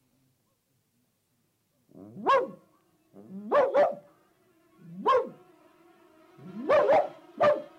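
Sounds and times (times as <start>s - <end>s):
dog barking: 2.1s - 2.6s, 3.4s - 4.1s, 4.9s - 5.4s, 6.6s - 7.7s.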